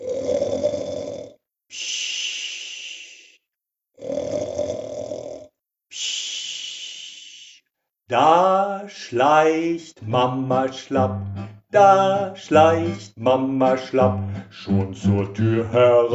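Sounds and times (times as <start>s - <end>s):
loud snoring: 0.0s - 1.4s, 4.0s - 5.5s
speech: 8.1s - 16.1s.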